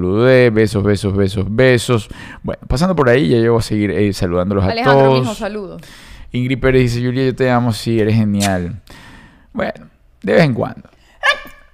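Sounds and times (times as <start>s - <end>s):
speech: 0.0s - 10.9s
single sharp sneeze: 11.2s - 11.7s.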